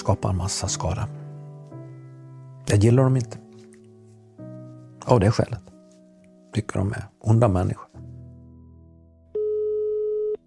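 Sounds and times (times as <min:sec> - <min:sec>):
speech: 0:00.1 - 0:01.2, 0:02.7 - 0:03.4, 0:05.0 - 0:05.7, 0:06.5 - 0:07.8
telephone ringback tone of outgoing call: 0:09.4 - 0:10.4.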